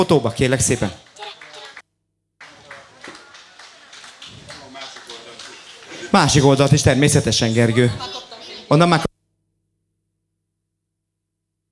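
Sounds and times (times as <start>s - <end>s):
speech: 0.0s - 1.0s, 6.1s - 9.1s
crowd applauding for a young girl at a number draw: 0.0s - 1.8s, 2.4s - 7.2s
laughter: 2.4s - 8.8s.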